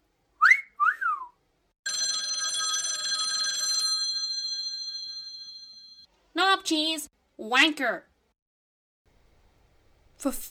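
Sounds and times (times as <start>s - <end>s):
parrot two-note wolf whistle: 0.4s - 1.4s
speech: 6.6s - 8.1s, 10.2s - 10.4s.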